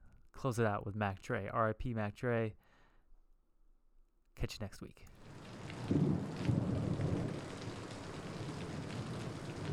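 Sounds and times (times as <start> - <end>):
speech: 0.4 - 2.7, 4.4 - 5.2, 5.9 - 6.3
steady rain pouring down: 5.2 - 9.7.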